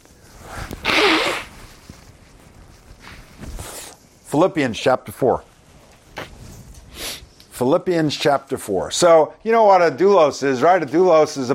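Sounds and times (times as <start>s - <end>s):
faint rustling: 0.0s - 7.5s
person sneezing: 0.8s - 1.5s
speech: 4.3s - 5.5s, 7.6s - 11.5s.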